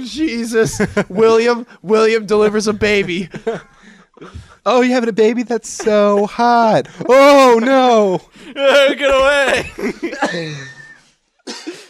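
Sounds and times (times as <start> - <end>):
speech: 0.0 - 10.8
laughter: 0.4 - 1.6, 2.3 - 4.6, 5.5 - 11.8
person coughing, throaty and rough breathy cough: 9.8 - 10.8, 11.4 - 11.8.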